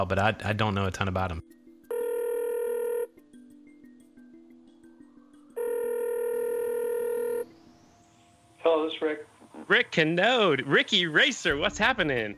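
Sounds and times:
speech: 0.0s - 1.6s, 8.8s - 12.3s
telephone ringing on an outgoing call: 1.9s - 3.1s, 5.6s - 7.5s.

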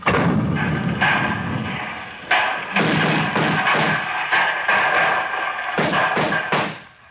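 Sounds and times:
cannon fire aimed at a barricade: 0.0s - 4.9s
continuous rumbling roar: 0.0s - 7.0s.

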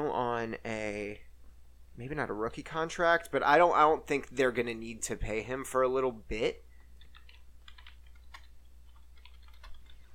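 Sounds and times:
speech: 0.0s - 1.3s, 2.0s - 6.7s
typing on a computer keyboard: 7.0s - 10.1s.

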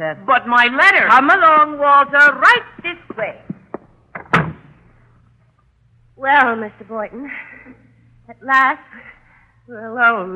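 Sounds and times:
speech: 0.0s - 3.4s, 6.2s - 9.1s, 9.7s - 10.3s
door shutting with click and thump: 3.5s - 4.9s.

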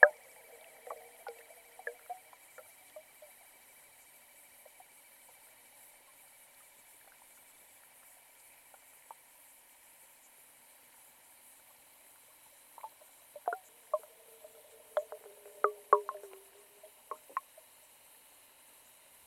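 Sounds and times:
underwater clicks in a small pond: 0.0s - 3.3s, 12.8s - 17.6s
bubbly ticks and pops underwater in a small pond: 0.0s - 3.4s, 12.8s - 17.6s
steady thin hiss underwater in a small pond: 0.0s - 19.2s.

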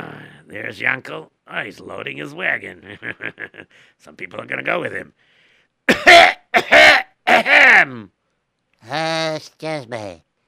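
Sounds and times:
speech: 0.5s - 8.2s, 8.8s - 10.3s
harsh raspy coughs: 5.9s - 8.0s.

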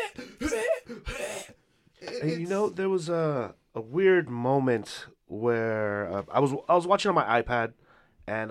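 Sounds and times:
person imitating coughing with harsh throaty hacks: 0.0s - 2.5s
speech: 2.2s - 8.4s.

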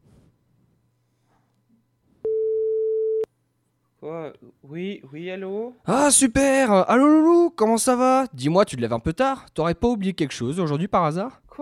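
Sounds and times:
electronic telephone tone while a call is placed: 2.2s - 3.3s
speech: 4.0s - 11.6s.

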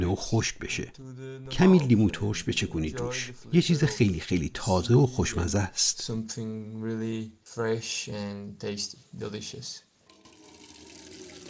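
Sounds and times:
speech: 0.0s - 9.9s
tap water pouring into a watering can: 10.1s - 11.4s.

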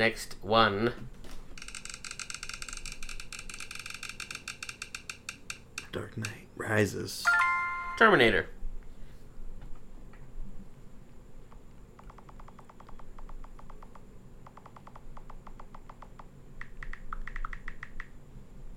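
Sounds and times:
speech: 0.0s - 1.1s, 6.0s - 7.4s, 8.0s - 8.6s
typing on a computer keyboard: 1.6s - 5.6s, 12.0s - 18.1s
low steady hum: 2.8s - 18.7s.

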